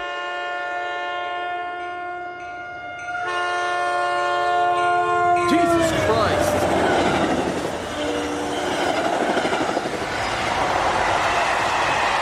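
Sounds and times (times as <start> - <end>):
train horn blaring a long steady chord: 0.0 - 8.9
train rushing past tents beside the tracks: 5.3 - 12.2.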